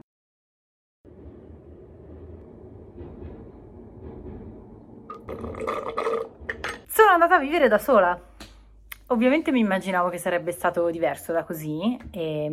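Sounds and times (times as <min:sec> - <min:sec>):
tram rumbling past outside: 0:01.0 - 0:08.1
speech: 0:07.1 - 0:08.3, 0:09.1 - 0:12.5.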